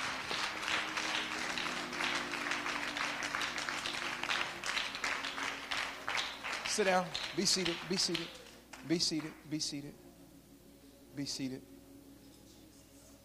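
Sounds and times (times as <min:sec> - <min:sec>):
audience clapping: 0:00.0 - 0:09.6
faint sustained organ or keyboard tones: 0:00.0 - 0:13.2
speech: 0:06.8 - 0:10.0, 0:11.2 - 0:11.8.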